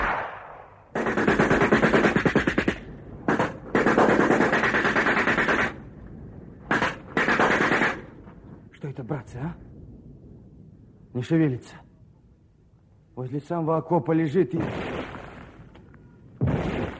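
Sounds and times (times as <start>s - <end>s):
scattered volley of rifle fire in a wartime battle: 0.0s - 5.9s, 6.7s - 8.2s, 16.4s - 16.9s
speech: 9.0s - 9.7s, 11.1s - 11.8s, 13.2s - 14.9s.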